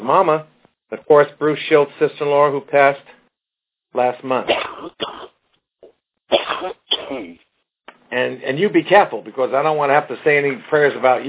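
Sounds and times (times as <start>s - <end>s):
speech: 0.0s - 3.2s, 3.9s - 5.1s, 8.1s - 11.2s
person coughing with a muffled telephone-like tone: 4.5s - 5.4s, 6.3s - 7.4s.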